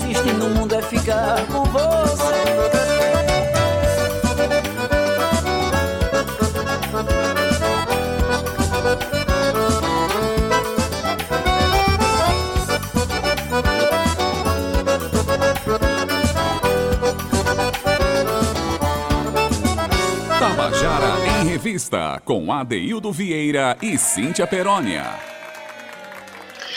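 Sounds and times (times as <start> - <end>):
male singer carrying the melody: 0.0 - 4.8, 20.3 - 21.8
full dense instrumental backing with steady rhythm: 0.0 - 21.8
speech: 0.4 - 1.9, 21.7 - 25.4.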